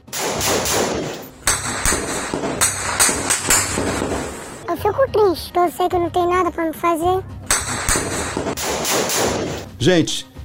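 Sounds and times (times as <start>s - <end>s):
gunshots with tails: 0.0s - 4.6s, 7.5s - 9.8s
speech: 5.0s - 7.4s, 8.4s - 10.3s.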